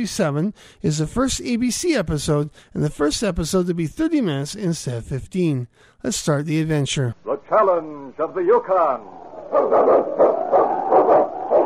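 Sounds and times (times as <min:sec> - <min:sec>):
speech: 0:00.0 - 0:10.4
husky sled team lead dog barking and yelping in the northern wilderness: 0:09.5 - 0:11.6.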